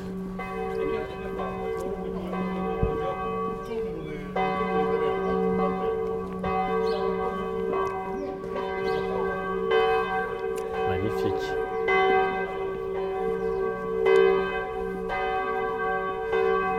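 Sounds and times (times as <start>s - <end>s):
church bells pealing with rich sustained tones: 0.0s - 16.7s
faint voices murmuring: 0.4s - 11.8s.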